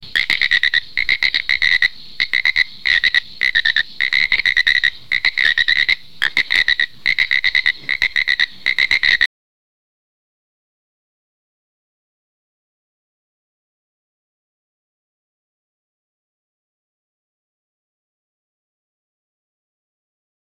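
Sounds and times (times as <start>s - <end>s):
frogs eating frogs: 0.0s - 9.3s.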